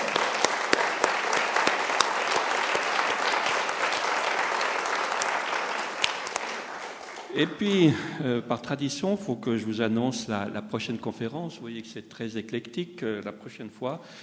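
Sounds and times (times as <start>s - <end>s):
audience applauding a lecturer: 0.0s - 8.0s
speech: 7.4s - 14.2s.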